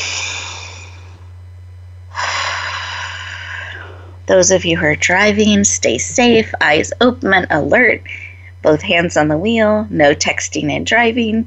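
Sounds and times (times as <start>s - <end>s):
deep breathing in through the nose and out through the mouth: 0.0s - 1.3s, 2.1s - 4.3s
steady low hum: 0.0s - 11.4s
speech: 4.3s - 11.4s.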